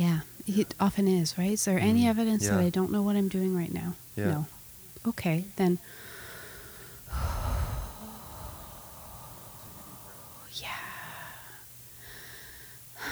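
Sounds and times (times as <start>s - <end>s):
speech: 0.0s - 6.1s
slow deep breath in and out: 5.8s - 13.1s.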